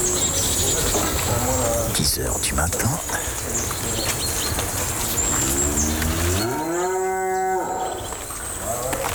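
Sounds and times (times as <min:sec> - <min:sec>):
outdoor noise: 0:00.0 - 0:09.1
cow mooing on its way out to the fields: 0:05.4 - 0:08.0.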